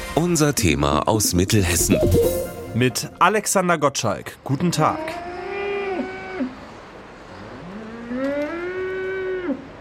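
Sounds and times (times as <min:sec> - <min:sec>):
speech: 0:00.3 - 0:05.3
cow mooing inside a reverberant barn: 0:04.9 - 0:06.6, 0:07.4 - 0:09.7.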